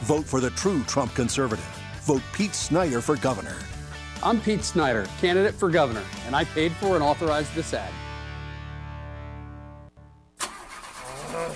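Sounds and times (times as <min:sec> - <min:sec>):
speech: 0:00.1 - 0:08.0
motorcycle engine cranking and starting into a rough idle: 0:10.4 - 0:11.5.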